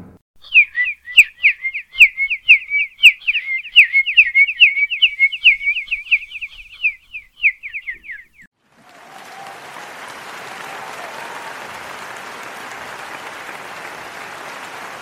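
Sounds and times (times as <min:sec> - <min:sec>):
person mimicking a flock of sparrows chirping in a garden: 0:00.5 - 0:08.2.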